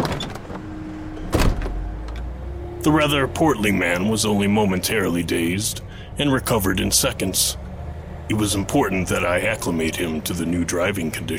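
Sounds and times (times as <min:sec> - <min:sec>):
sliding door thudding clunk at its stop: 0:00.0 - 0:02.3
sliding door of a vehicle's cab rolling open: 0:00.0 - 0:03.5
speech: 0:02.8 - 0:07.6, 0:08.3 - 0:11.3.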